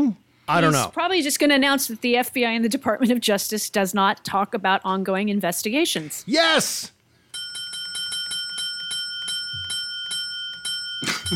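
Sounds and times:
speech: 0:00.0 - 0:07.0
small bell dinging: 0:07.3 - 0:11.3.

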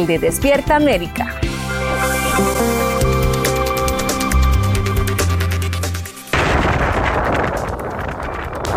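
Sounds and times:
speech: 0:00.0 - 0:01.5
musical passage with sharp percussive hits: 0:00.8 - 0:08.7
roaring gusts of a giant tornado touching down in Texas: 0:06.3 - 0:08.7.

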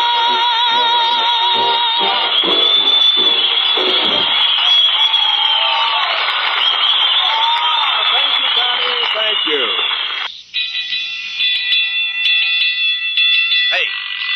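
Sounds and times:
firehouse alarm bell ringing: 0:00.0 - 0:14.3
voices: 0:08.1 - 0:10.0.

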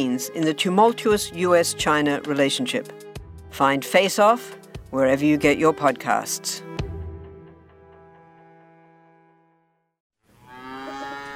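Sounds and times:
speech: 0:00.0 - 0:06.8
cattle mooing on a farm: 0:10.4 - 0:11.3.

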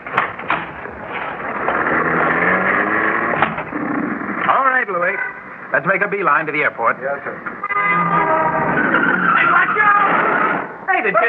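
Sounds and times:
car tires skidding as a car rides into the rear of a limousine: 0:00.8 - 0:04.5, 0:07.8 - 0:10.8
speech: 0:05.0 - 0:08.0, 0:11.0 - 0:11.2.

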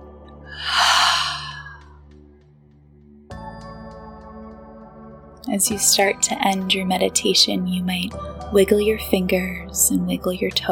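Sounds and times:
soft sustained music: 0:00.0 - 0:10.7
loud breathy exhale after a deep breath in during a guided meditation: 0:00.5 - 0:01.9
speech: 0:05.5 - 0:10.7.

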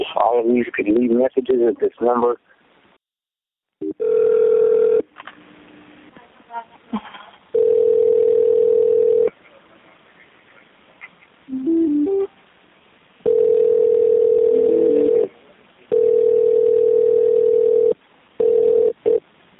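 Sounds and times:
speech: 0:00.2 - 0:02.5
telephone line tone during 911 dispatcher call-back attempt: 0:03.8 - 0:05.0, 0:07.6 - 0:09.3, 0:13.2 - 0:15.3, 0:15.9 - 0:19.2.

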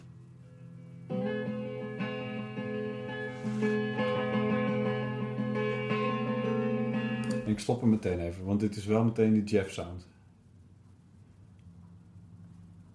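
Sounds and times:
song guitar intro with shimmering chords strummed: 0:00.5 - 0:07.5
speech: 0:07.6 - 0:10.2.

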